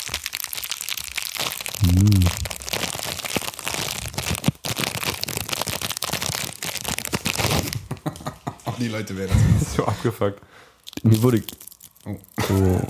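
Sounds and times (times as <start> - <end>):
plastic snack bag crinkling as it is pulled open: 0.0 - 8.1, 10.8 - 12.8
laughter: 7.8 - 10.2
speech: 8.8 - 12.8.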